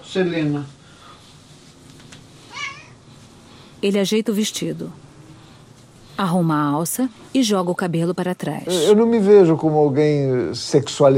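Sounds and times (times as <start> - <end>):
speech: 0.1 - 0.8, 3.8 - 5.0, 6.2 - 11.1
female cat meowing: 2.5 - 3.0.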